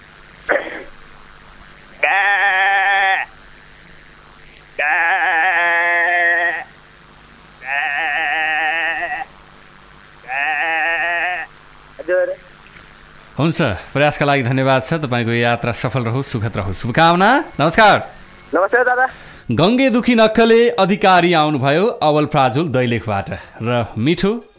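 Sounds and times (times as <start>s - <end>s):
person imitating a sheep bleating: 2.0s - 3.3s, 4.8s - 6.8s, 7.6s - 9.3s, 10.2s - 11.5s
speech: 13.4s - 24.5s.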